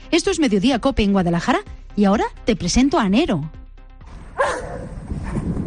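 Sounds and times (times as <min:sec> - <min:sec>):
speech: 0:00.1 - 0:03.6
18-month-old German shepherd police dog barking: 0:04.3 - 0:05.5.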